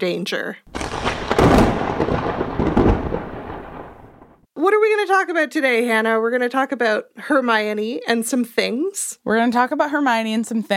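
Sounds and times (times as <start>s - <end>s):
speech: 0.0s - 0.8s, 4.6s - 10.7s
thunder crack from a lightning strike: 0.7s - 4.5s.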